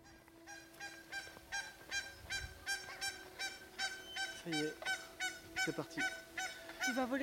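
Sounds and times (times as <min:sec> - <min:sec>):
geese honking in the Cantal: 0:00.0 - 0:07.2
speech: 0:04.4 - 0:04.9, 0:05.6 - 0:06.2, 0:06.9 - 0:07.2.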